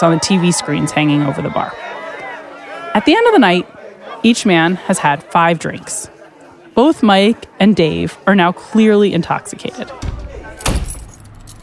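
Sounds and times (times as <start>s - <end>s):
speech: 0.0s - 1.9s, 2.9s - 6.2s, 6.8s - 10.2s
laughter: 0.0s - 10.6s
car keys jangling as a man fumbles for them: 10.6s - 11.6s.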